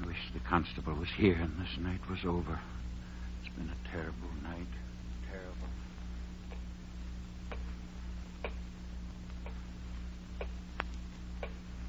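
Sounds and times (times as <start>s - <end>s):
low constant hum: 0.0s - 11.8s
speech: 0.5s - 2.8s, 3.6s - 5.8s
clock ticking: 8.4s - 8.7s, 10.4s - 10.6s, 11.4s - 11.6s.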